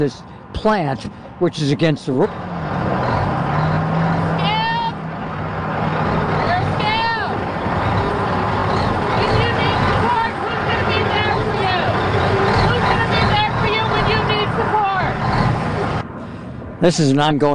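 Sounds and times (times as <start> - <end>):
speech: 0.0 - 2.5, 16.8 - 17.5
large truck engine idling and creeping forward: 0.0 - 17.5
brief rising squeals: 2.2 - 16.1
loud dense crowd hubbub at a picket line: 3.4 - 16.0
people shouting: 4.4 - 5.0, 8.1 - 15.2.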